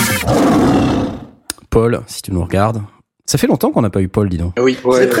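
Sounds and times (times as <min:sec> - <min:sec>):
tiger roaring: 0:00.2 - 0:01.4
speech: 0:01.7 - 0:05.1.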